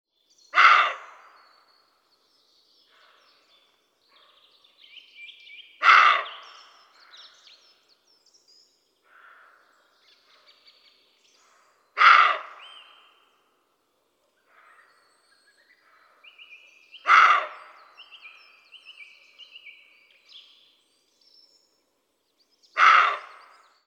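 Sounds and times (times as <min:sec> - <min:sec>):
Capreolus capreolus: 0:05.8 - 0:06.7, 0:12.0 - 0:12.7, 0:17.0 - 0:17.8, 0:22.8 - 0:23.6.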